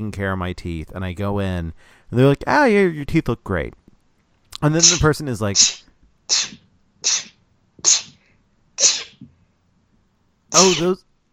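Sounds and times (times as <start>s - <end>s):
speech: 0.0s - 3.8s, 4.6s - 8.1s, 8.8s - 9.2s, 10.5s - 11.0s
person sneezing: 4.8s - 8.2s, 8.8s - 9.3s, 10.6s - 11.0s.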